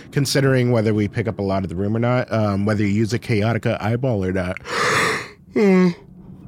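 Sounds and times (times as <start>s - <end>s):
speech: 0.2s - 6.1s
person yawning with a voiced falling groan: 4.6s - 6.0s.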